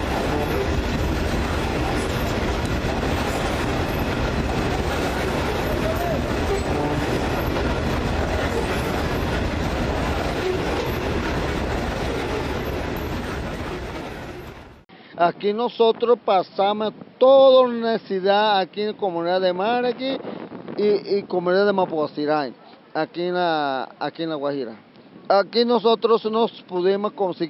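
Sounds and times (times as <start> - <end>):
coal-laden freight train from a mine in La Guajira, Colombia, rumbling past: 0.0 - 14.9
speech: 15.2 - 27.4.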